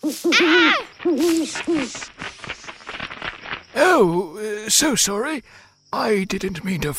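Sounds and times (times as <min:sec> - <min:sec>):
owl hooting: 0:00.0 - 0:02.2
speech: 0:00.0 - 0:02.2, 0:04.0 - 0:06.9
faint rustling: 0:00.8 - 0:04.2.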